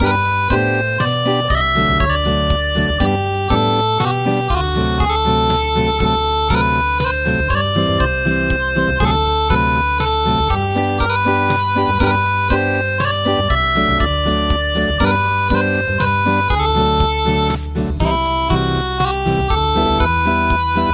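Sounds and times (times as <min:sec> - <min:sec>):
traditional acoustic midi music: 0:00.0 - 0:20.9.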